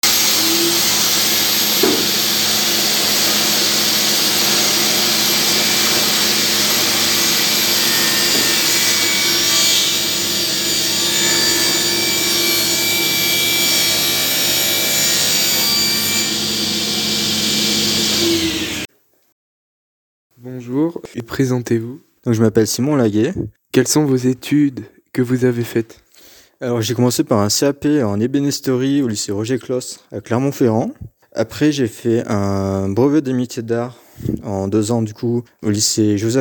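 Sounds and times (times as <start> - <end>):
workshop saw machine cutting wood: 0.0 - 18.9
speech: 21.4 - 26.0, 26.6 - 36.4.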